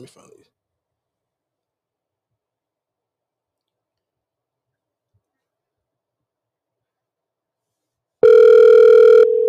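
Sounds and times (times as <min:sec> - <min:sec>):
speech: 0:00.0 - 0:00.6
phone call ringing tone: 0:08.2 - 0:09.4.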